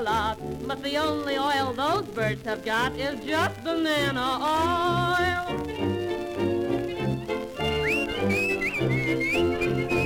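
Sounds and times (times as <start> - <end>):
speech: 0.0 - 5.9
song with a full instrumental backing: 0.0 - 10.0
bright sliding melodic whistle: 6.7 - 10.0.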